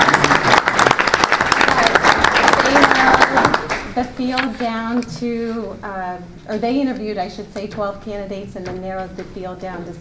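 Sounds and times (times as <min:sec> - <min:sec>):
roomful of people applauding: 0:00.0 - 0:04.0
speech: 0:04.0 - 0:09.9.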